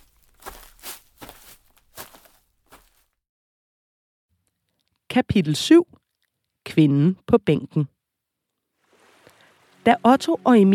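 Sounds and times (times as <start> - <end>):
footsteps crunching on pea-gravel of a rowing club parking lot: 0.0 - 3.2
speech: 5.2 - 6.0, 6.7 - 8.0, 9.8 - 10.7.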